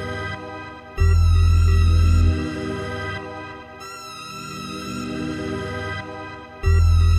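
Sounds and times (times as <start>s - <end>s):
funky rock beat ringtone: 1.0s - 2.5s, 6.6s - 7.1s.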